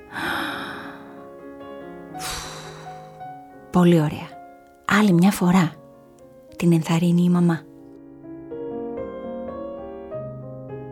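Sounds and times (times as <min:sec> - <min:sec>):
soft sustained music tones: 0:00.0 - 0:10.9
single deep breath in and out: 0:00.1 - 0:01.3, 0:02.2 - 0:03.4
speech: 0:03.8 - 0:04.3, 0:04.9 - 0:05.8, 0:06.6 - 0:07.7.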